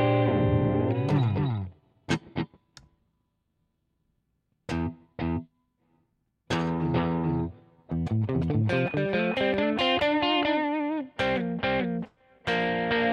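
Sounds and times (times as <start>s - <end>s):
electric guitar notes through ping-pong bounce delay effect: 0.0s - 2.5s, 6.5s - 13.1s.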